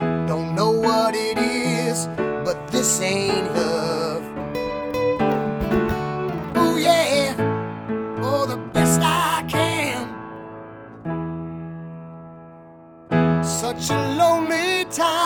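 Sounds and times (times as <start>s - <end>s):
dry piano voice: 0.0s - 15.2s.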